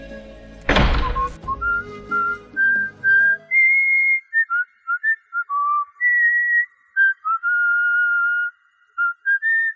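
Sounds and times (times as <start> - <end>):
heavy thump: 0.7 - 1.6
person whistling a light meandering tune while walking out: 1.1 - 9.7.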